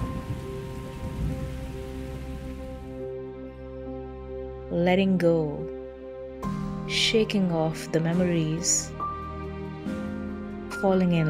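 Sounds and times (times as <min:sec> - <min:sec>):
rain pattering and thumping on a hard surface: 0:00.0 - 0:03.0
speech: 0:04.7 - 0:05.8, 0:06.9 - 0:09.0, 0:10.8 - 0:11.2.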